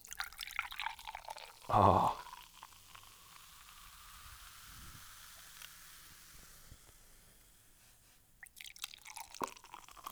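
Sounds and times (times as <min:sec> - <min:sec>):
carbonated drink with hemp seed extract poured into a glass: 0:00.0 - 0:06.0, 0:08.4 - 0:10.1
speech: 0:01.7 - 0:02.2.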